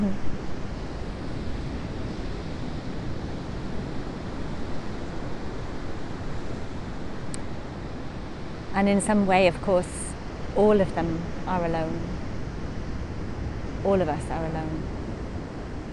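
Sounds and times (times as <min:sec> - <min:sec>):
speech: 0:00.0 - 0:00.4, 0:08.8 - 0:10.0, 0:10.6 - 0:12.2, 0:13.8 - 0:15.0
ocean waves washing against the shore: 0:00.0 - 0:15.9
wind noise: 0:00.0 - 0:15.9.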